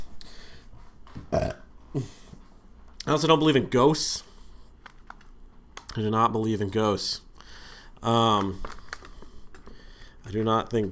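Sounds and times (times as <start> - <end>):
speech: 1.2 - 2.2, 3.1 - 4.3, 6.0 - 7.3, 8.0 - 8.8, 10.3 - 10.8
person burping with a gurgling belch: 1.3 - 2.1.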